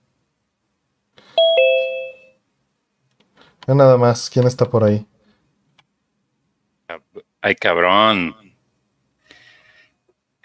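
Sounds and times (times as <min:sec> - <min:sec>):
two-note electronic chime as someone joins an online call: 0:01.4 - 0:02.4
speech: 0:03.7 - 0:05.1, 0:07.4 - 0:08.4.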